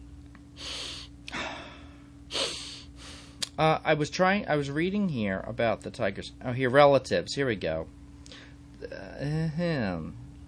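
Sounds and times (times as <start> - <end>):
person yawning: 0.6 - 2.9
speech: 3.6 - 8.0, 8.8 - 10.2.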